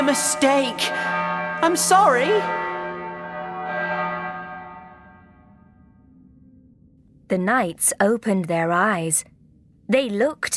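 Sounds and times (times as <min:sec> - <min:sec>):
large bell ringing: 0:00.0 - 0:06.9
speech: 0:00.1 - 0:02.7, 0:07.3 - 0:09.3, 0:09.9 - 0:10.5.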